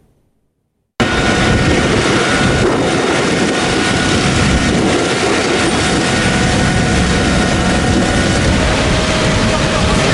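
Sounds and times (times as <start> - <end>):
Turkish firefighting aircraft engine roar flying over wildfires: 1.0 - 10.1.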